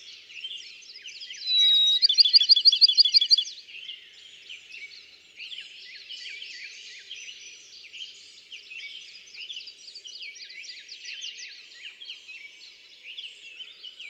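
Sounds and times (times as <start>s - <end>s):
Bachman's sparrow trill: 1.4s - 3.5s.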